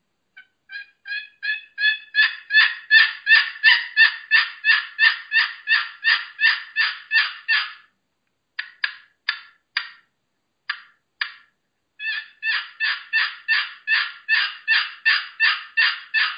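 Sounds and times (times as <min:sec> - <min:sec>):
turkey yelps from a Pollard box call: 0:00.4 - 0:07.9, 0:12.0 - 0:16.3.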